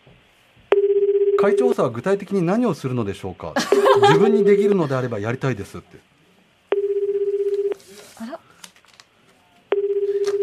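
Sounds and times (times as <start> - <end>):
buzzing telephone dialing tone: 0.7 - 1.7, 3.7 - 4.8, 6.7 - 7.8, 9.7 - 10.4
speech: 1.4 - 6.1
laughter: 3.6 - 5.1.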